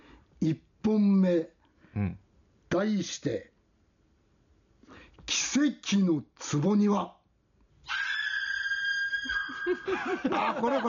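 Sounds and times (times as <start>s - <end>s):
speech: 0.4s - 3.5s, 5.2s - 7.2s, 9.7s - 10.8s
woman's high-pitched scream sound effect: 7.9s - 10.0s
laughter: 9.4s - 10.8s.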